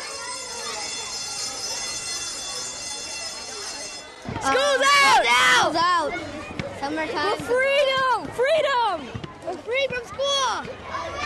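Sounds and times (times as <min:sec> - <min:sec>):
electric school bell ringing: 0:00.0 - 0:05.7
speech: 0:04.2 - 0:11.2.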